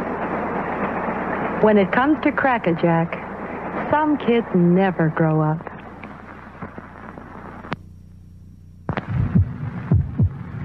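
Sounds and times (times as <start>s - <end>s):
faint hiss: 0.0s - 9.9s
speech: 1.6s - 3.2s, 3.8s - 5.7s
human heartbeat: 8.9s - 10.6s.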